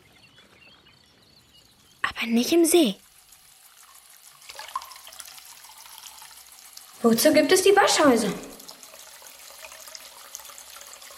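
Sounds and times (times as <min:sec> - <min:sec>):
speech: 0:02.2 - 0:03.0, 0:07.0 - 0:08.5
tap water filling a plugged washbasin: 0:02.5 - 0:11.1.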